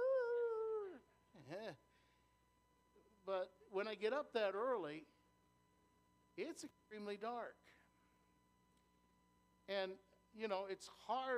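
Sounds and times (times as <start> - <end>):
voice imitating neighborhood dogs howling: 0.0 - 1.0
speech: 3.3 - 5.1, 6.4 - 7.8, 9.7 - 11.3.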